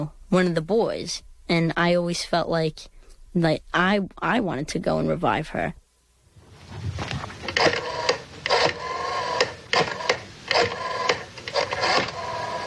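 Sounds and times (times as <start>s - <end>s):
speech: 0.0s - 5.8s
rotary phone dialing: 7.5s - 12.6s.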